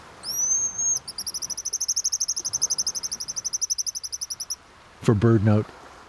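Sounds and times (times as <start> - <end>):
Pigeon Guillemot thin high whistle and piping call: 0.2 - 4.6
speech: 5.0 - 5.8.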